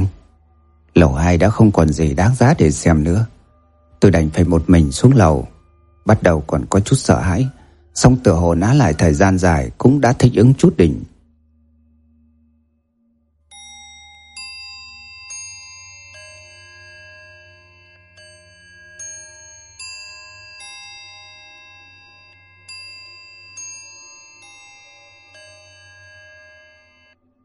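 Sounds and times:
clock bell chiming the hour in an old house: 0:00.0 - 0:11.1, 0:13.5 - 0:27.4
speech: 0:01.0 - 0:03.4, 0:04.0 - 0:11.1.

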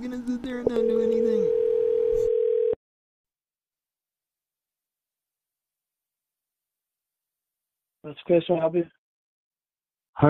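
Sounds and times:
telephone dial tone after a call disconnected: 0:00.8 - 0:02.8
speech: 0:08.1 - 0:09.0.

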